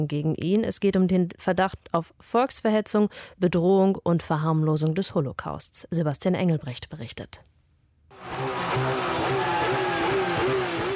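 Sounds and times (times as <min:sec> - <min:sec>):
speech: 0:00.0 - 0:07.6
powerful sports car engine revving: 0:08.2 - 0:10.9.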